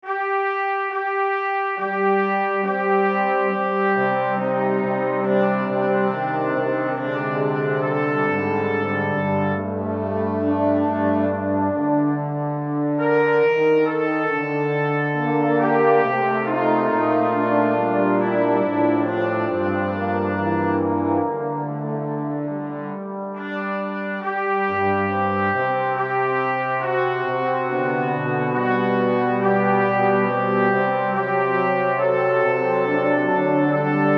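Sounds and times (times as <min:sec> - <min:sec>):
brass section: 0:00.0 - 0:34.1.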